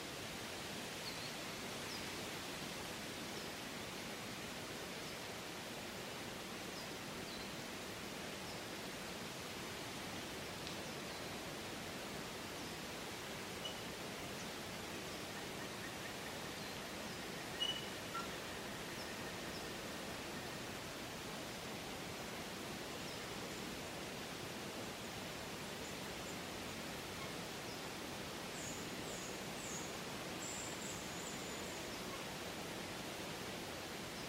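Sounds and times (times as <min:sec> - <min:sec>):
autumn wind rushing through rustling leaves: 0:00.0 - 0:34.2
faint high chirps: 0:17.5 - 0:19.4.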